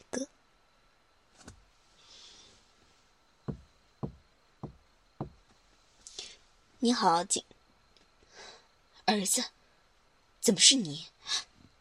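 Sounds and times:
speech: 0.1 - 0.4, 6.8 - 7.5, 9.1 - 9.6, 10.4 - 11.5
firm knocks on a door: 3.5 - 5.4.

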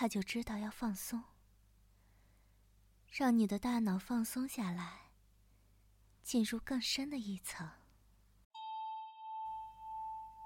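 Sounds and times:
speech: 0.0 - 1.3, 3.1 - 5.0, 6.2 - 7.8
bell chime struck during a relaxation session: 8.6 - 10.4.

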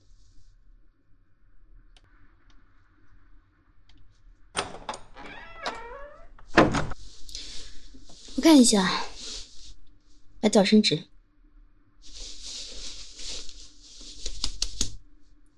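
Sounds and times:
door handle and latch clattering: 4.6 - 7.0
speech: 8.4 - 9.1, 10.4 - 11.1.

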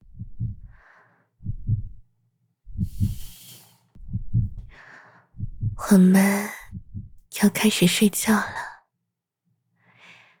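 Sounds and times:
heartbeat in slow steady double beats: 0.0 - 0.8, 1.4 - 2.0, 2.7 - 3.4, 4.0 - 4.8, 5.4 - 6.0, 6.6 - 7.2
soft airy breaths hissing faintly: 0.4 - 1.9, 2.7 - 5.8, 9.8 - 10.3
speech: 5.9 - 6.6, 7.4 - 8.6.

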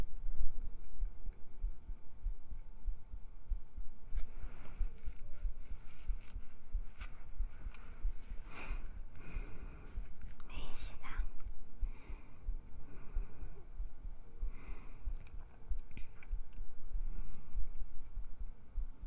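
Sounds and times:
heartbeat: 0.0 - 19.0
soft rustling and brushing: 3.6 - 9.0.

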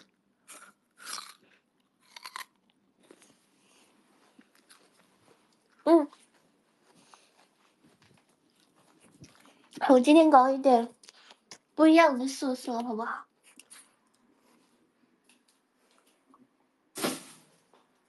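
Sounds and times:
biting into a peach: 0.0 - 3.3
soft chewing of a peach: 0.0 - 9.8, 10.9 - 11.8, 13.2 - 16.5
speech: 9.9 - 11.0, 11.8 - 13.3.

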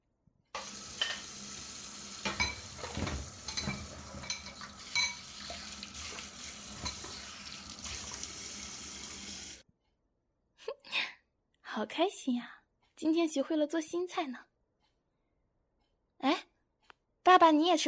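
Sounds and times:
dishes clinking and clattering under the water: 0.6 - 1.4, 2.2 - 7.3
tap water running while washing dishes: 0.6 - 9.6
speech: 11.8 - 14.5, 17.3 - 17.8.

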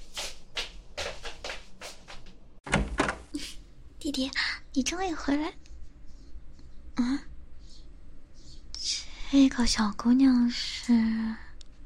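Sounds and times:
hurried footsteps with shuffling thumps: 0.0 - 2.4
door being pulled open: 2.7 - 3.3
speech: 4.1 - 5.6, 7.0 - 7.3, 9.3 - 11.4.

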